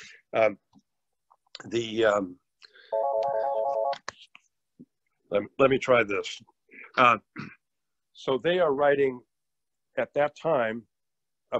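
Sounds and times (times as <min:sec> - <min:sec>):
speech: 0:00.3 - 0:00.8, 0:01.6 - 0:02.4, 0:05.3 - 0:07.6, 0:08.2 - 0:09.3, 0:10.0 - 0:10.9
brand-new telephone ringing with an electronic warble: 0:02.9 - 0:04.0.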